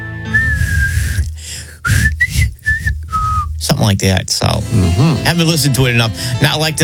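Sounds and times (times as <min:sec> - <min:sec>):
person whistling a short melodic theme tune: 0:00.2 - 0:03.5
speech: 0:03.8 - 0:06.8.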